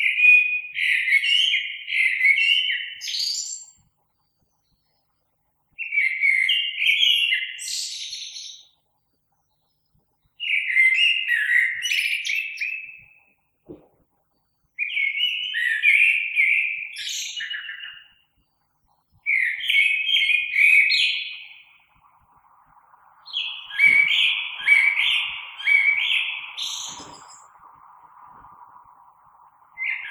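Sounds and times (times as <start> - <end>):
common blackbird singing fluty phrases: 0.0 - 3.8, 5.8 - 8.8, 10.4 - 13.8, 14.8 - 18.3, 19.2 - 21.8, 23.2 - 27.5, 29.8 - 30.0.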